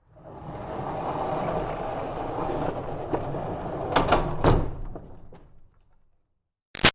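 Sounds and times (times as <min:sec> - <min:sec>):
barn door rolling: 0:00.1 - 0:06.0.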